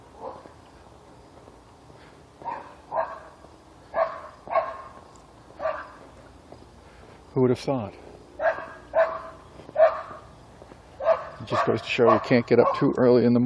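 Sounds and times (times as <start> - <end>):
dog barking: 0.2 - 0.5, 2.4 - 5.0, 5.6 - 6.0, 8.4 - 10.3, 11.0 - 13.0
speech: 7.4 - 8.0, 11.5 - 13.4.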